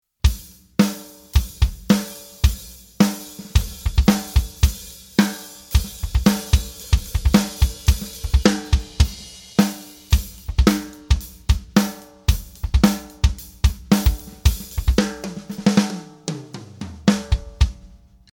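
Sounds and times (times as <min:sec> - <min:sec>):
snare drum through spot microphone: 0:00.3 - 0:18.0
kick drum through spot microphone: 0:03.6 - 0:04.8, 0:05.8 - 0:09.3, 0:10.2 - 0:15.1.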